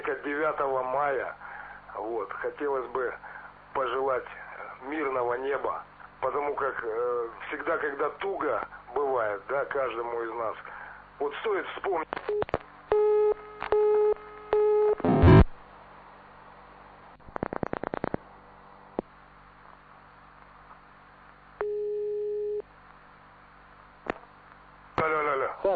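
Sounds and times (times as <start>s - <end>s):
speech: 0.2s - 1.4s, 2.0s - 12.4s
telephone line noise burst: 12.2s - 15.6s, 17.1s - 23.9s
long steady tone: 12.4s - 15.3s, 21.5s - 22.7s.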